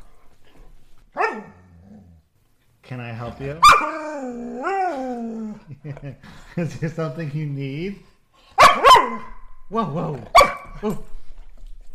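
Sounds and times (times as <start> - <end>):
dog barking: 1.2 - 1.6, 3.6 - 3.9, 8.6 - 9.4, 10.3 - 10.8
speech: 2.9 - 8.1, 9.1 - 11.1
laughter: 5.6 - 6.8.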